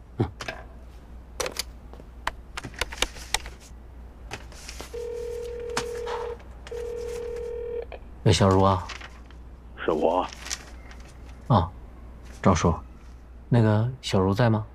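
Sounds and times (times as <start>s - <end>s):
steady electronic tone from the telephone line: 5.0s - 8.0s
speech: 8.3s - 8.9s, 9.9s - 10.4s, 11.5s - 11.7s, 12.4s - 12.8s, 13.5s - 14.7s.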